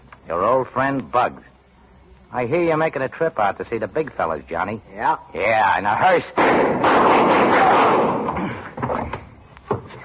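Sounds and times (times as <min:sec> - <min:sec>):
speech: 0:00.3 - 0:01.5, 0:02.3 - 0:08.6
gunshots in a shootout: 0:06.4 - 0:08.4.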